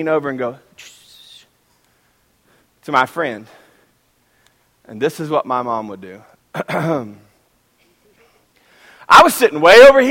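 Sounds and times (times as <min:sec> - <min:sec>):
speech: 0:00.0 - 0:00.9, 0:02.8 - 0:03.6, 0:04.9 - 0:07.2, 0:09.1 - 0:10.1
person clearing throat: 0:06.6 - 0:07.2.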